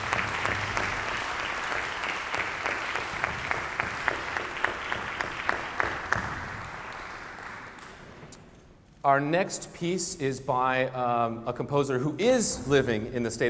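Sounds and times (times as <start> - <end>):
audience applause: 0.0 - 8.2
individual claps: 0.0 - 8.4
speech: 9.0 - 13.4.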